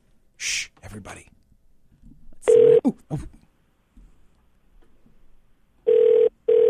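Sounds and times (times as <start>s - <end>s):
speech: 1.0s - 1.4s, 2.8s - 3.3s
overseas telephone line to a private line in Singapore ringing: 2.4s - 2.8s, 5.9s - 6.6s.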